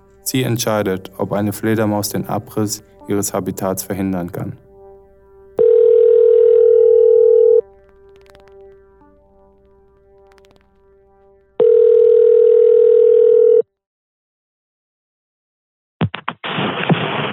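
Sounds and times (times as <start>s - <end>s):
speech: 0.2s - 4.6s
telephone ringback tone while calling a government authority: 5.6s - 7.6s, 11.6s - 13.6s.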